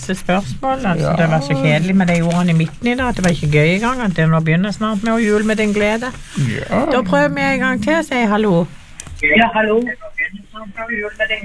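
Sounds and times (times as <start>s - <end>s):
speech: 0.0s - 11.4s
radio playing in the background of a phone call: 0.6s - 2.4s, 5.2s - 11.4s.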